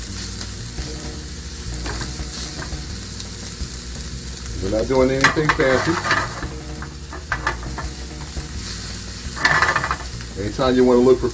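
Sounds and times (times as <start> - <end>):
leftover food browning and sizzling in a shaken skillet: 0.0 - 11.3
skillet scraping and rattling as it is shaken: 1.8 - 3.0, 4.8 - 8.6, 9.3 - 10.2
speech: 4.6 - 6.4, 10.4 - 11.3.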